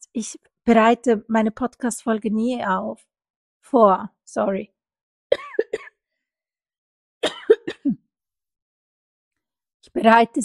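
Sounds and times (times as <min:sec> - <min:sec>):
speech: 0:00.2 - 0:05.9, 0:10.0 - 0:10.4
person coughing: 0:05.3 - 0:06.0, 0:07.2 - 0:08.0.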